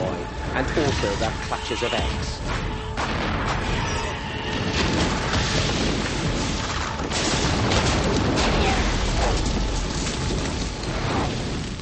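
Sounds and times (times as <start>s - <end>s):
speech: 0.6s - 3.8s
roaring blast of blue fire: 4.5s - 11.8s.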